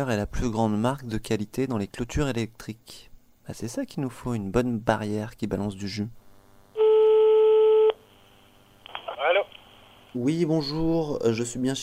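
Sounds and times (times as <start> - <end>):
speech: 0.0 - 6.2, 10.1 - 11.8
quiet telephone line hiss: 6.6 - 10.3
telephone ringing tone while calling an electric fencing company: 6.8 - 8.0.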